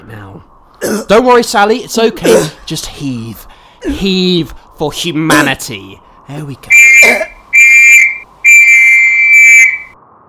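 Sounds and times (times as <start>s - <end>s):
speech: 0.1s - 7.2s
loud shrill emergency whistle blasts: 6.7s - 10.0s.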